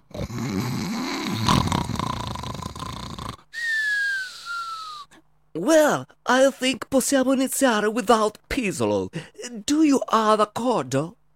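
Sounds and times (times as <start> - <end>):
person snoring with rattling inhale and whistling exhale: 0.0 - 3.5
speech: 5.7 - 11.2.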